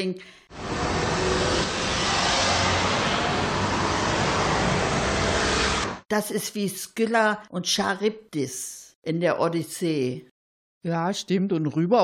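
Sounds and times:
speech: 0.0 - 1.7, 6.1 - 12.0
road traffic roaring far below on the Theodor Heuss road: 0.5 - 6.0.

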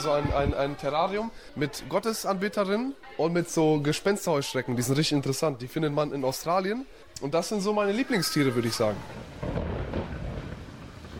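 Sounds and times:
speech: 0.0 - 9.4
hiss like heavy rain: 8.0 - 11.1
thunderclap rolling into a deep rumble: 9.0 - 11.1.

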